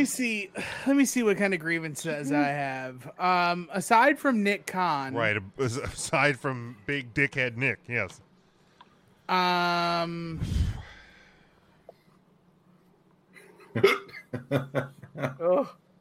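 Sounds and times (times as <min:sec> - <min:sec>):
speech: 0:00.0 - 0:08.3, 0:09.3 - 0:10.8, 0:13.8 - 0:15.8
breathy rush of air: 0:10.4 - 0:11.5
person hiccuping: 0:13.8 - 0:14.2.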